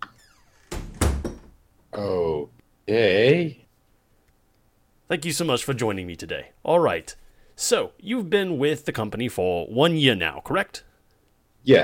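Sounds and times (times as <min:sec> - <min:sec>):
door shutting with solid clunking thuds: 0:00.4 - 0:01.6
speech: 0:02.9 - 0:03.6, 0:05.1 - 0:10.9, 0:11.6 - 0:11.8.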